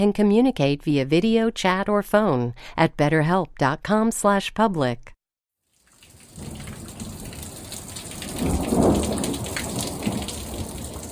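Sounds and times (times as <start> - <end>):
speech: 0.0 - 5.2
torrential rain in Phoenix Arizona: 5.7 - 11.1
deep thunder rumble in Phoenix Arizona: 6.3 - 11.1.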